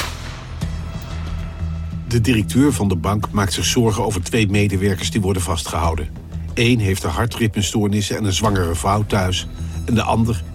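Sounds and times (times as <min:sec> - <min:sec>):
gunshots: 0:00.0 - 0:00.6
speech: 0:02.1 - 0:10.5.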